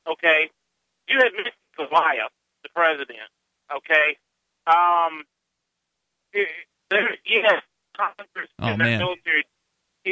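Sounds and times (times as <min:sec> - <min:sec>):
speech: 0:00.1 - 0:05.3, 0:06.3 - 0:10.1
voice over a badly degraded phone line: 0:08.6 - 0:09.2.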